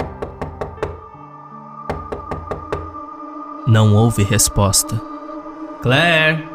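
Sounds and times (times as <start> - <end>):
careful knocking on a bedroom door: 0.0 - 1.1, 1.9 - 3.0
speech: 3.7 - 5.1, 5.8 - 6.5.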